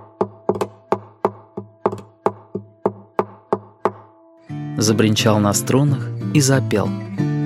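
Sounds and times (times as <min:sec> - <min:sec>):
fingers tapping on a hollow guitar body: 0:00.4 - 0:04.1
speech: 0:04.8 - 0:07.3.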